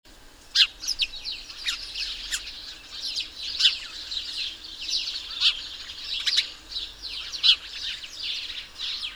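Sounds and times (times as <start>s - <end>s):
house sparrow Passer domesticus flock chirping: 0.4s - 9.1s.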